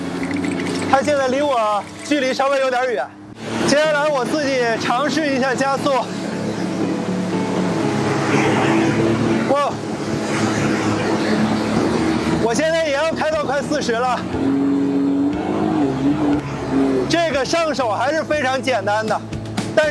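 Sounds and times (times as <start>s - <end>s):
jet ski engine speeding across water: 0.0s - 19.8s.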